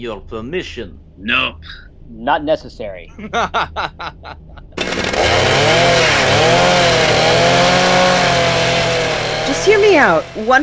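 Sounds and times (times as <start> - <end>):
laughter: 0.0 - 1.8, 2.7 - 5.0
speech: 0.0 - 8.2, 9.5 - 10.6
powered bone saw running: 4.8 - 10.6.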